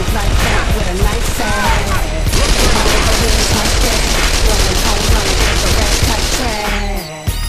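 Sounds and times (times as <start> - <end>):
rapid gunfire at a tanker truck: 0.0 - 6.9.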